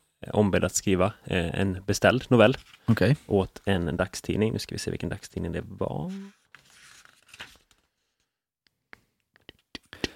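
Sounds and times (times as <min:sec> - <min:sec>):
speech: 0:00.2 - 0:06.4
paper pages being flipped: 0:02.4 - 0:03.0, 0:06.1 - 0:08.3
paper rustling: 0:02.4 - 0:03.1, 0:06.1 - 0:08.4.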